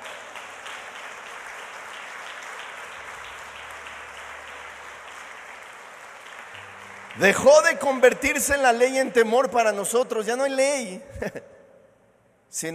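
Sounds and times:
audience applauding during a sermon: 0:00.0 - 0:09.1
speech: 0:07.2 - 0:11.6, 0:12.5 - 0:12.7
laughter: 0:11.1 - 0:11.4.

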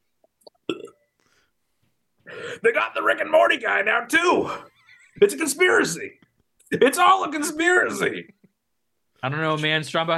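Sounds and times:
man burping: 0:00.5 - 0:01.1
speech: 0:02.6 - 0:08.4, 0:09.2 - 0:10.1.

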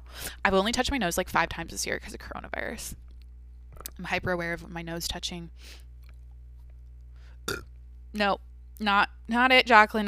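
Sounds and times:
speech: 0:00.4 - 0:03.1, 0:04.0 - 0:05.9, 0:07.4 - 0:10.0
short loud burp: 0:07.5 - 0:07.7.

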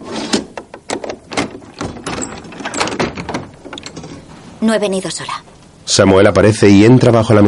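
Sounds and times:
door with a small window being opened, latch and frame rattling: 0:00.6 - 0:04.2
speech: 0:04.6 - 0:07.4.

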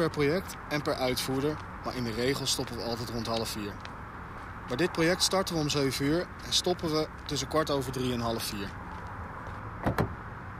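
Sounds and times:
speech: 0:00.0 - 0:03.9, 0:04.7 - 0:08.8
locked car door handle yanked with mechanical clunks: 0:09.8 - 0:10.2.

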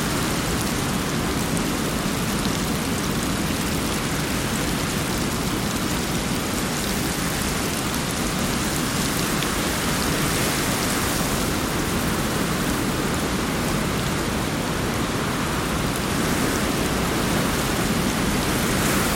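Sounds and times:
steady dense rainfall: 0:00.0 - 0:19.1.

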